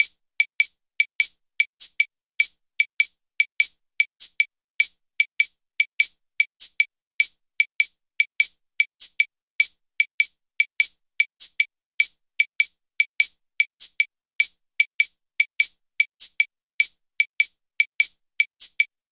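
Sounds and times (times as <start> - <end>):
punto guajiro clave rhythm: 0.0 - 18.9.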